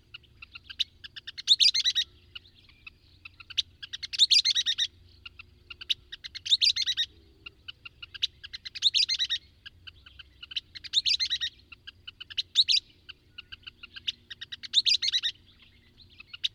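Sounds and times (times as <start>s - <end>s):
bird song: 0.0s - 16.5s
low steady hum: 0.0s - 16.5s.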